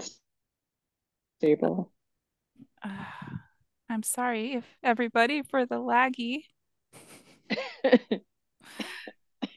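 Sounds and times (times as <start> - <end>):
speech: 1.4 - 2.0, 2.8 - 9.2
person coughing: 8.7 - 9.5.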